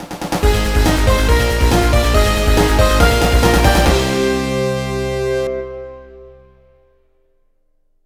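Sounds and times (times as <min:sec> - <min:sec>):
level clear jingle: 0:00.4 - 0:06.9.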